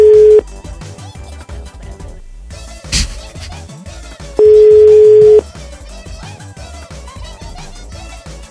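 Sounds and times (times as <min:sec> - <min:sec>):
loud steady telephone busy tone after dropped call: 0:00.0 - 0:00.4, 0:04.4 - 0:05.4.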